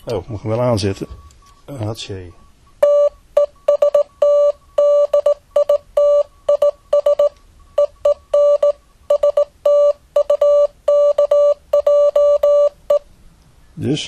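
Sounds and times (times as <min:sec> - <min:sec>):
speech: 0:00.0 - 0:02.4, 0:13.8 - 0:14.0
single-pitched sine beep sending Morse code: 0:02.4 - 0:13.1.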